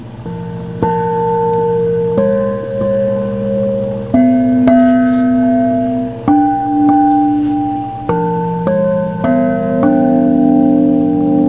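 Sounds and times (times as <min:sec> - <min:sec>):
gongs: 0:00.0 - 0:11.4.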